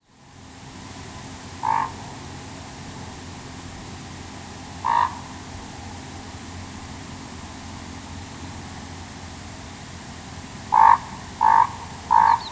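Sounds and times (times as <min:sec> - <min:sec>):
common raven giving hoarse croaks: 0:01.6 - 0:02.0, 0:04.8 - 0:05.3, 0:10.7 - 0:12.4.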